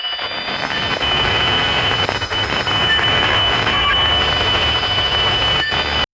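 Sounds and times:
extreme digital decay glitch noise: 0.2s - 6.1s.

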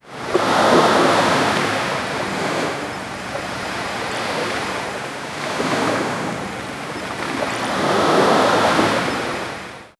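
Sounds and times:
light ocean waves: 0.0s - 9.9s.

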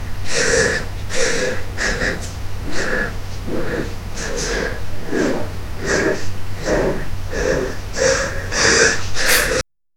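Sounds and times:
person panting rhythmically: 0.0s - 9.7s.

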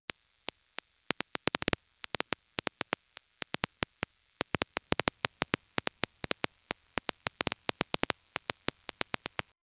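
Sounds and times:
sparks: 0.1s - 9.6s.

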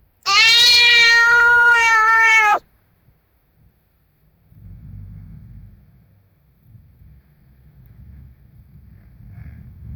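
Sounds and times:
agitated march cat screaming: 0.3s - 2.6s.

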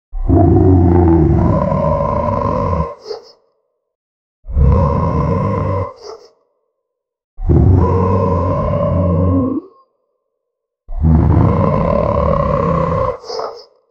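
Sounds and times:
fantastic predator growling: 0.2s - 3.4s, 4.5s - 6.4s, 7.4s - 9.9s, 10.9s - 13.8s.

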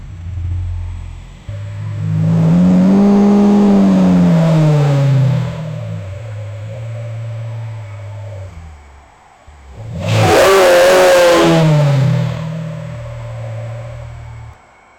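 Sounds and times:
powerful lion roaring: 1.5s - 9.0s, 9.7s - 14.5s.

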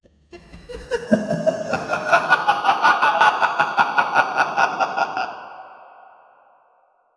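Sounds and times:
slow haunting ghost laugh: 0.0s - 6.9s.

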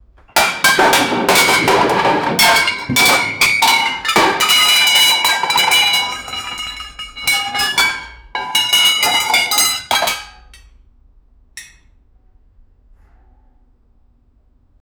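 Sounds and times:
kitchen bowls and plates clattering: 0.2s - 10.6s.

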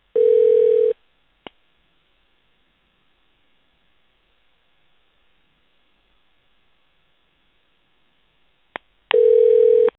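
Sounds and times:
phone call answered: 0.2s - 1.0s, 9.1s - 9.9s.

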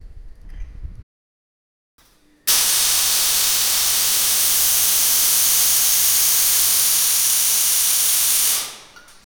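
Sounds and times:
welding sizzling in a workshop: 2.5s - 9.2s.

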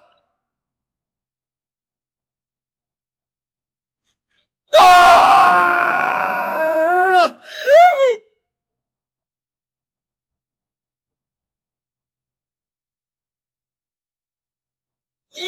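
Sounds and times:
man screaming for help: 4.7s - 8.2s.

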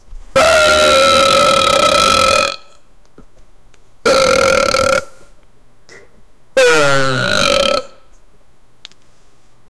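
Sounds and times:
man burping long and loud: 0.4s - 2.8s, 4.1s - 5.3s, 6.6s - 8.0s.

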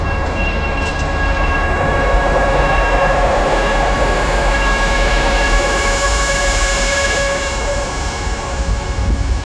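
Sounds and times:
long distance train passing: 0.0s - 9.4s.

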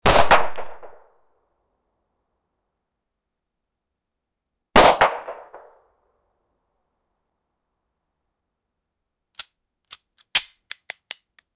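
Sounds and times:
Colt 1911 pistol shot: 0.0s - 1.0s, 4.8s - 5.7s.

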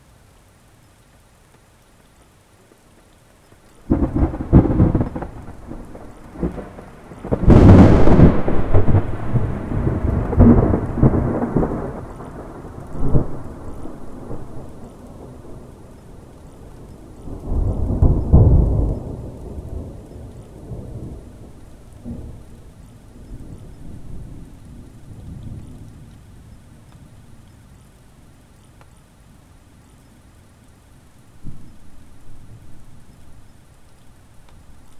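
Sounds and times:
heavy rain: 0.0s - 34.9s
thunder: 3.9s - 15.7s, 16.9s - 22.5s.

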